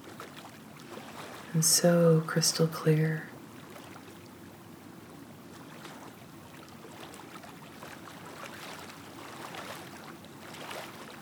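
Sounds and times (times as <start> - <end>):
ocean surf with soft waves breaking and receding: 0.0 - 2.1, 5.6 - 11.1
speech: 1.5 - 3.3.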